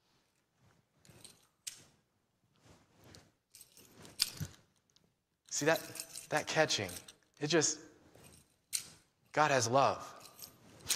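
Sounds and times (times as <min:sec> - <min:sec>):
keys jangling while tossed and caught: 0:01.0 - 0:01.8, 0:03.4 - 0:07.5, 0:08.1 - 0:09.3, 0:10.0 - 0:10.9
speech: 0:05.6 - 0:07.9, 0:09.3 - 0:10.2.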